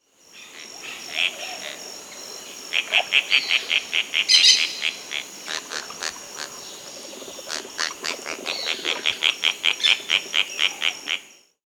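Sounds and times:
Black-tailed Tityra Tityra cayana calling in Peru: 0:02.8 - 0:10.9.

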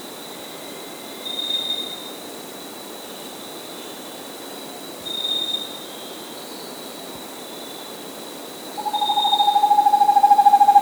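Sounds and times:
vermiculated screech owl giving a fast even trill in South America: 0:08.8 - 0:10.8.

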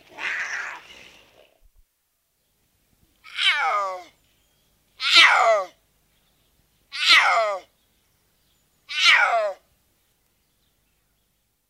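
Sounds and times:
puma harsh descending meow-like cries: 0:00.0 - 0:00.9, 0:03.2 - 0:04.2, 0:05.0 - 0:05.8, 0:06.9 - 0:07.7, 0:08.9 - 0:09.6.

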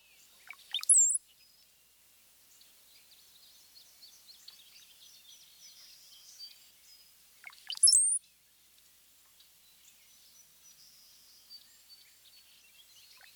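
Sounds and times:
Brown-headed Cowbird song with bubbly burst and high whistle: 0:00.0 - 0:08.4, 0:09.6 - 0:13.3
faint high twittering: 0:00.5 - 0:01.2, 0:07.4 - 0:08.2.

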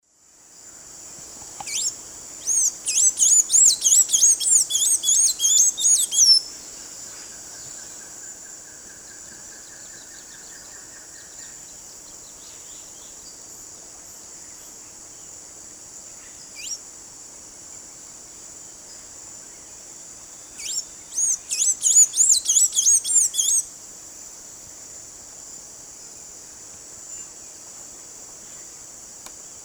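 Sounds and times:
Thraupis episcopus song in Eastern Lowlands of S. America: 0:01.6 - 0:13.4, 0:20.4 - 0:23.6.

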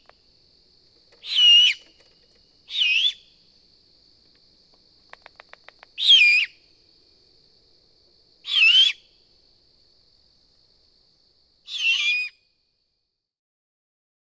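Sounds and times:
great horned owl screeching: 0:01.2 - 0:01.8, 0:02.7 - 0:03.3, 0:06.0 - 0:06.6, 0:08.5 - 0:09.0, 0:11.7 - 0:12.4.

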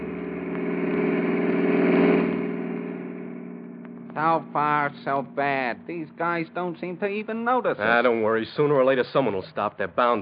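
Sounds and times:
car speeding past on a highway: 0:00.0 - 0:05.4
low drone of highway traffic: 0:00.0 - 0:10.2
speech: 0:04.2 - 0:10.2.

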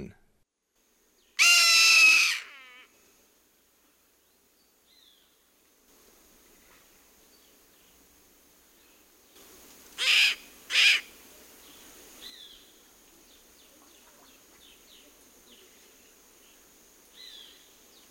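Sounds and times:
Black Caracara calling in Ecuador: 0:01.2 - 0:03.0, 0:09.4 - 0:16.0.

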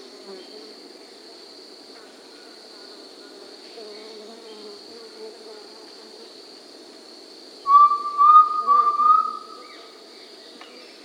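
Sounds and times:
insect hum: 0:00.0 - 0:11.0
undulated tinamou whistle in South America: 0:07.7 - 0:09.6.

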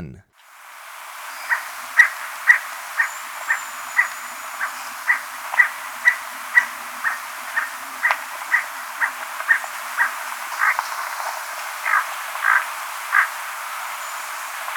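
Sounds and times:
emerald toucanet calling in Ecuador: 0:00.4 - 0:14.7.

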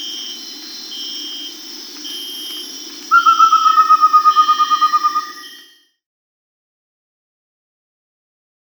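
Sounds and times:
Amazonian pygmy owl whistled toots in South America: 0:00.0 - 0:05.8
steady high tones: 0:00.0 - 0:05.8.

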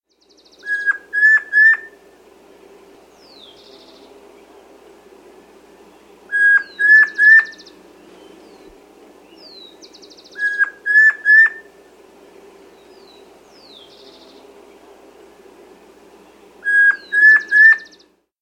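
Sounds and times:
Rufous-faced Antpitta in South America: 0:00.2 - 0:02.3, 0:03.1 - 0:14.8, 0:16.2 - 0:18.1.

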